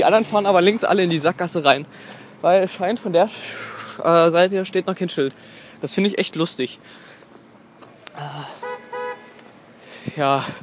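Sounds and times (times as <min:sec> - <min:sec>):
speech: 0:00.0 - 0:07.1, 0:10.2 - 0:10.6
car horns honking in traffic at a stopped car: 0:07.5 - 0:09.5.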